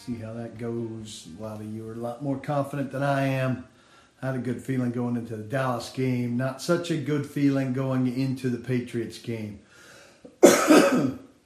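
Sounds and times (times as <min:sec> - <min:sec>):
speech: 0:00.0 - 0:09.7, 0:10.4 - 0:11.2
harsh raspy cough with a throaty rumble: 0:10.3 - 0:11.3.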